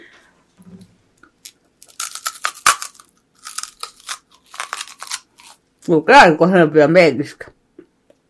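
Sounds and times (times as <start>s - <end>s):
crunching bite into a candy apple: 1.4s - 5.9s
speech: 5.8s - 7.6s.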